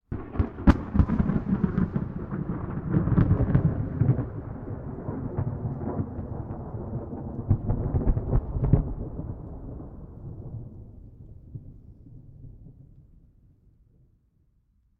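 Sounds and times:
close thunder peeling: 0.1 - 11.1.

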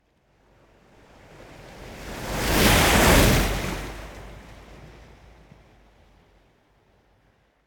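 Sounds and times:
strong ocean waves and surf lapping on the coast: 1.1 - 5.5.

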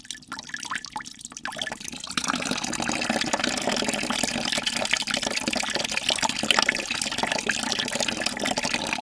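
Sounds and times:
water filling: 0.0 - 9.0.

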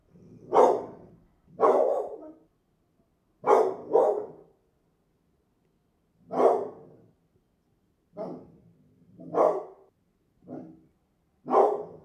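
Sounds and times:
Pit bull dog: 0.4 - 2.5, 3.4 - 4.5, 6.3 - 7.0, 8.2 - 8.6, 9.2 - 10.9, 11.5 - 12.0.

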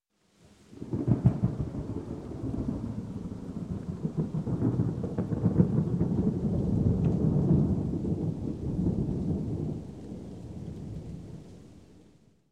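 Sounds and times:
thunder rumbling: 0.7 - 11.9.

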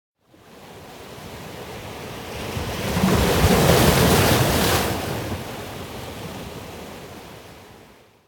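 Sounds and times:
gentle slow ocean waves on a rocky coast: 1.3 - 7.7.

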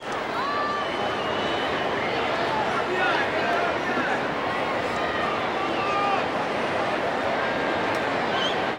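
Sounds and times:
baseball crowd chatter: 0.0 - 8.7.

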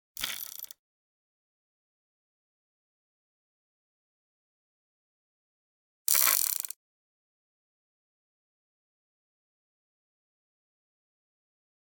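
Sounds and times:
.22 Western pistol chamber spinning: 0.2 - 0.7.

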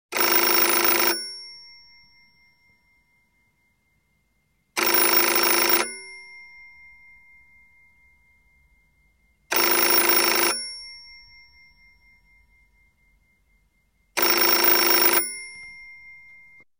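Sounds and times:
European telephone ringing: 0.2 - 1.9, 4.8 - 7.9, 9.5 - 12.7, 14.2 - 16.6.

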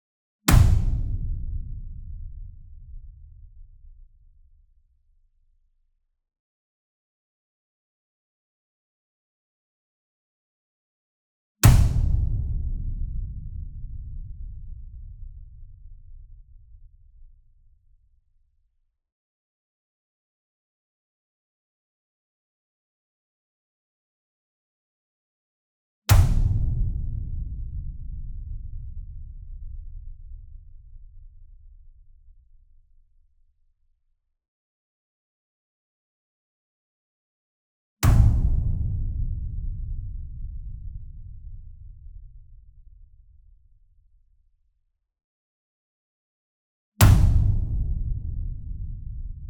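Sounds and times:
single 66 Inch drum hit with whip beater near: 0.5 - 2.1, 11.6 - 13.6, 26.1 - 27.3, 38.0 - 40.0, 47.0 - 49.2.

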